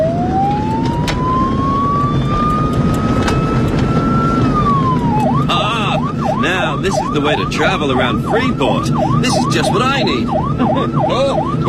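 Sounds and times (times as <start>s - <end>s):
emergency vehicle siren in a night-time traffic jam: 0.0s - 11.6s
traffic rumble in a night-time traffic jam: 0.0s - 11.6s
speech: 6.9s - 11.6s.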